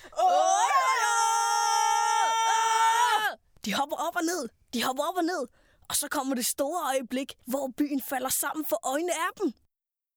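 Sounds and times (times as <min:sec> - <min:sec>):
children shouting and screaming together: 0:00.0 - 0:03.4
speech: 0:03.7 - 0:09.6.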